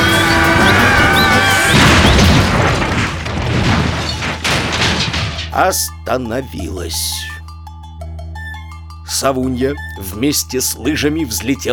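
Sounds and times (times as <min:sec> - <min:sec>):
crash of splintering wood and smashing debris as bed bursts through house wall: 0:00.0 - 0:05.8
scattered clattering bumps: 0:00.0 - 0:05.9
speech: 0:05.6 - 0:07.3, 0:09.1 - 0:11.7.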